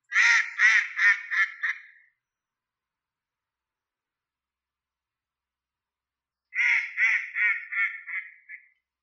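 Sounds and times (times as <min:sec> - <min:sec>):
eastern spot-billed duck calling: 0:00.1 - 0:02.0, 0:06.6 - 0:08.8.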